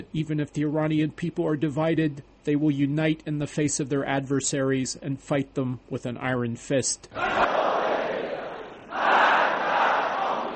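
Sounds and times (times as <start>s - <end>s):
speech: 0.0s - 7.6s
large crowd chanting anti-Western slogans in unison: 7.2s - 10.5s.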